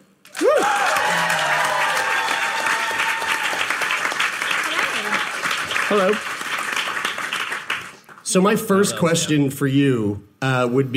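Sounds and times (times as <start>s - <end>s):
audience applause: 0.2s - 8.2s
faint whoops and voices: 0.3s - 3.8s
speech: 5.9s - 6.3s, 8.3s - 10.9s.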